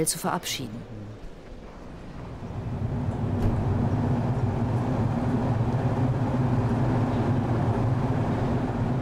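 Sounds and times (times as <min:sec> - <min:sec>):
speech: 0:00.0 - 0:01.0
train departing from a station: 0:00.0 - 0:08.9.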